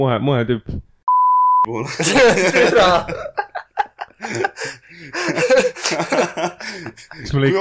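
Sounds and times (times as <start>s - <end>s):
speech: 0.0s - 0.9s, 1.6s - 3.4s, 4.2s - 7.5s
censor bleep tone: 1.1s - 1.7s
people laughing: 1.8s - 7.5s.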